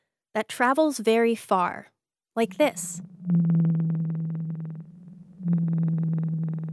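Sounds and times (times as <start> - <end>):
speech: 0.4 - 3.8
blue whale call sped up: 2.4 - 6.7.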